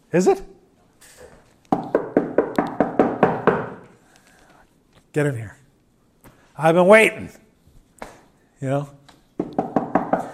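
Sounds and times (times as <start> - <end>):
speech: 0.1 - 0.6, 5.2 - 5.6, 6.6 - 7.4, 8.6 - 9.0
firm knocks on a door: 1.7 - 3.8, 9.4 - 10.3.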